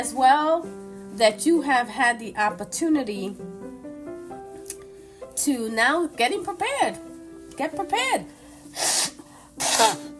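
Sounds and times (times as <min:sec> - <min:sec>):
speech: 0:00.0 - 0:03.5, 0:05.4 - 0:09.2, 0:09.8 - 0:10.1
person sneezing: 0:08.7 - 0:10.1.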